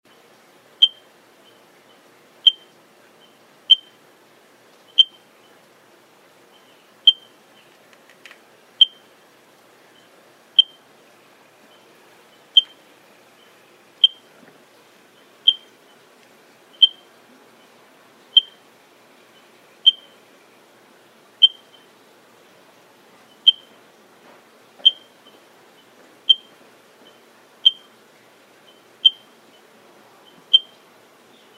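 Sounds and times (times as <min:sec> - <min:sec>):
Eiffinger's tree frog calling: 0:00.8 - 0:04.0, 0:04.9 - 0:05.6, 0:06.5 - 0:07.7, 0:08.8 - 0:09.1, 0:09.9 - 0:10.9, 0:11.7 - 0:12.8, 0:13.4 - 0:14.3, 0:15.1 - 0:16.1, 0:16.7 - 0:17.1, 0:18.3 - 0:18.6, 0:19.3 - 0:20.2, 0:21.4 - 0:21.9, 0:23.3 - 0:23.7, 0:24.8 - 0:28.0, 0:28.6 - 0:31.5.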